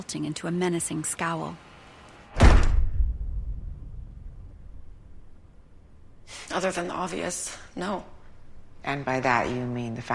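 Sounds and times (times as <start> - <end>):
speech: 0.0 - 1.7, 6.6 - 8.2, 8.8 - 10.1
door slamming: 2.3 - 3.8.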